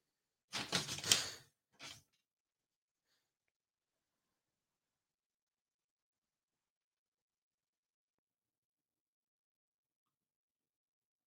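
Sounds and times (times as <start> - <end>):
door rattling and scraping while being closed: 0.5 - 2.0.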